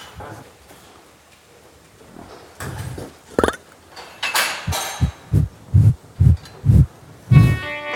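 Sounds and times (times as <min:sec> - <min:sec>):
cow burping from one of its four stomachs: 0:02.9 - 0:03.7
curious cow snuffling on a farm: 0:04.7 - 0:07.7
evenly spaced low pulses: 0:04.7 - 0:07.7.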